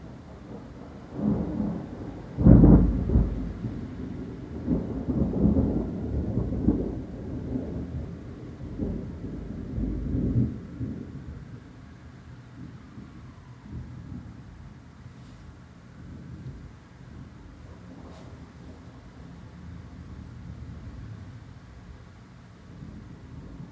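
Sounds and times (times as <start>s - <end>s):
thunder rumbling over South London: 0.0s - 15.1s, 15.8s - 23.7s
steady rain in Tulse Hill London UK: 0.0s - 23.7s.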